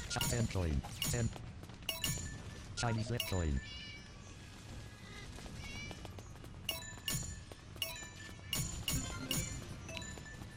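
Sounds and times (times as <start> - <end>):
sharp clicky video game hits: 0.0 - 2.5, 6.7 - 10.1
speech: 0.2 - 1.5, 2.8 - 3.8
video game cat meowing: 3.0 - 4.1, 5.0 - 6.0.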